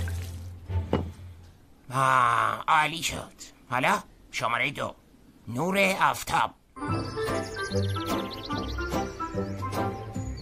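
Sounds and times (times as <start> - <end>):
water being poured for a plant: 0.0 - 0.6
speech: 1.9 - 10.0.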